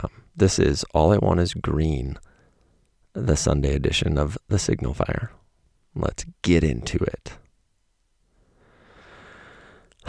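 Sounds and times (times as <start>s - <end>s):
speech: 0.0s - 2.3s, 3.2s - 5.4s, 6.0s - 7.4s
long deep breath: 8.3s - 10.0s.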